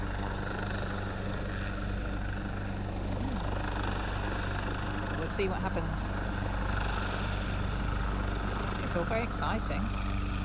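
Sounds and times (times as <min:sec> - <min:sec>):
helicopter hovering over a lake: 0:00.0 - 0:10.4
speech: 0:05.3 - 0:06.4, 0:08.9 - 0:10.1.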